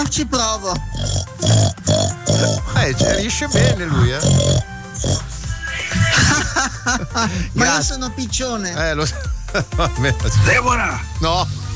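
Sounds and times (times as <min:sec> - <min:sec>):
speech: 0:00.1 - 0:01.8, 0:02.9 - 0:05.2, 0:06.8 - 0:11.5
human voice imitating a pig's oink: 0:00.7 - 0:06.4
laughter: 0:05.6 - 0:07.8, 0:09.0 - 0:10.3.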